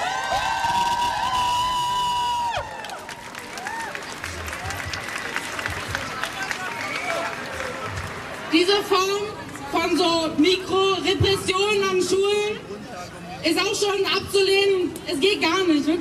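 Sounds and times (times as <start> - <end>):
student protest crowd whooping and shouting at a school strike: 0.0 - 5.6
student protest crowd cheering and clapping at a school strike: 0.0 - 8.6
speech: 8.6 - 12.7, 13.4 - 15.9.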